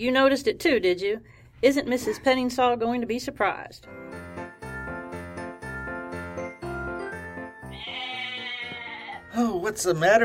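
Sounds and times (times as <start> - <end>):
speech: 0.0 - 4.0, 9.4 - 10.2
frightened goats bleating in an apartment building hallway: 7.7 - 9.4.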